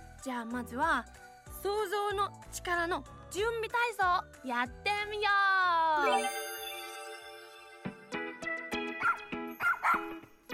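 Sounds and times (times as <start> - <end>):
speech: 0.2 - 6.4
dog barking: 9.0 - 10.2.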